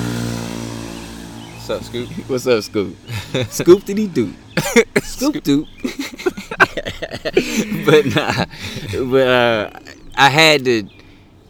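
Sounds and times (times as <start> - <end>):
scooter engine passing by: 0.0 - 3.3
speech: 1.7 - 6.1, 7.0 - 11.0
laughter: 3.1 - 10.4.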